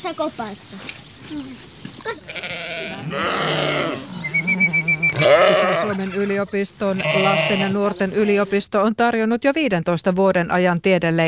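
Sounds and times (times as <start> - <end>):
pig and lamb snuffling and shuffling: 0.0 - 8.6
speech: 0.0 - 11.2
lamb bleating at an animal park in Finland: 2.1 - 8.6.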